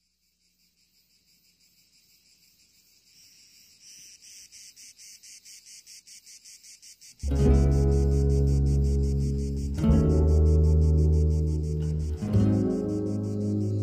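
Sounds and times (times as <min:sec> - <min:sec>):
cicadas chirping on a summer day in the south: 0:00.0 - 0:13.8
loud bass-heavy music: 0:07.3 - 0:13.8.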